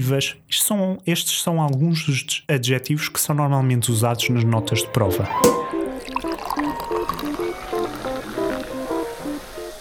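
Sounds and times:
speech: 0:00.0 - 0:06.2
light melodic music: 0:04.1 - 0:09.7
wet slurping and gurgling of air drawn through wine in the mouth: 0:05.9 - 0:09.2.

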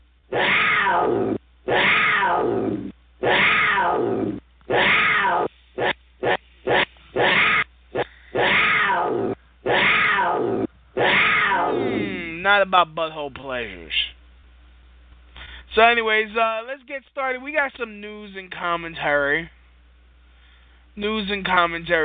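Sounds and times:
cougar roaring loud and raspy: 0:00.3 - 0:12.3
speech: 0:12.6 - 0:14.1, 0:15.8 - 0:19.6, 0:21.0 - 0:22.0.

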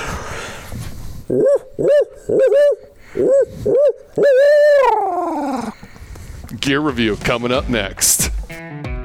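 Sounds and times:
owl hoots made with a call or voice imitation: 0:01.2 - 0:05.8
speech: 0:01.3 - 0:05.7, 0:06.6 - 0:08.9.

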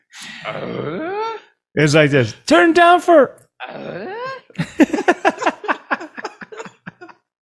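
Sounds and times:
speech: 0:00.4 - 0:01.2, 0:01.8 - 0:05.0
choppy grunting vocal bursts sounding like a fart: 0:00.4 - 0:01.4, 0:03.6 - 0:04.6
laughter: 0:04.6 - 0:07.3.

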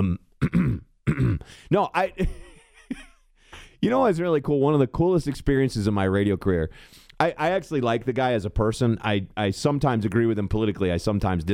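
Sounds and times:
speech: 0:00.0 - 0:00.6, 0:01.5 - 0:02.4, 0:03.8 - 0:11.5
man making short grunting vocal noises: 0:00.0 - 0:01.5
man clearing throat with rough gravelly rasps: 0:00.0 - 0:01.6.

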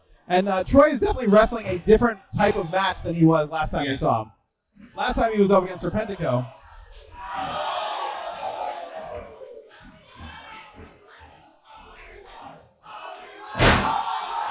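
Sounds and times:
speech: 0:00.3 - 0:07.7
large arena crowd chanting and roaring: 0:05.0 - 0:14.5
sharp slam: 0:13.6 - 0:14.0.

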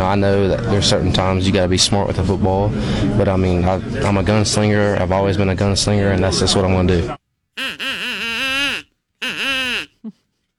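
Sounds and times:
speech: 0:00.1 - 0:07.9
duck call being blown: 0:07.6 - 0:10.0.

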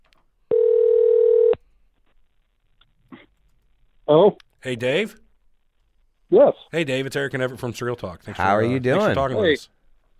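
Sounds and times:
electronic phone ringback tone: 0:00.5 - 0:01.6
speech: 0:04.1 - 0:05.2, 0:06.3 - 0:10.1.

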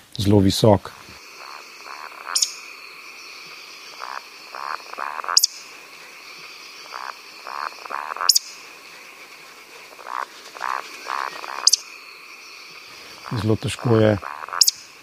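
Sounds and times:
speech: 0:00.2 - 0:01.1, 0:13.4 - 0:14.4
male Eurasian woodcock roding calls, soft low croaking grunts: 0:00.9 - 0:08.4, 0:09.9 - 0:12.0, 0:12.8 - 0:14.9.

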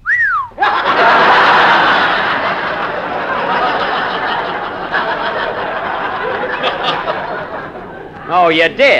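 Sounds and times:
wolf whistle at girls: 0:00.0 - 0:00.6
large crowd laughing: 0:00.6 - 0:08.9
speech: 0:08.4 - 0:08.9.

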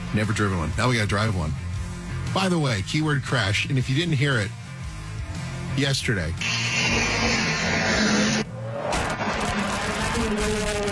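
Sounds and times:
speech: 0:00.1 - 0:01.7, 0:02.3 - 0:04.6, 0:05.8 - 0:07.4
snowmobile engine revving in a garage: 0:06.4 - 0:10.9.

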